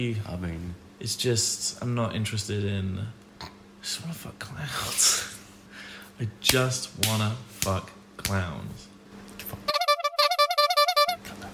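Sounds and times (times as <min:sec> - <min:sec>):
speech: 0:00.0 - 0:03.2, 0:03.8 - 0:05.4, 0:06.2 - 0:08.9
honking sound effect bleeping out speech: 0:09.7 - 0:11.2.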